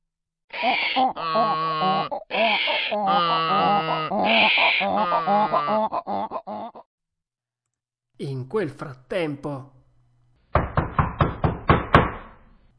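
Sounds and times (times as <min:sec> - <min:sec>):
human voice imitating two donkeys braying: 0:00.5 - 0:06.9
speech: 0:00.6 - 0:06.4, 0:08.2 - 0:09.8
firm knocking on a door: 0:10.5 - 0:12.3.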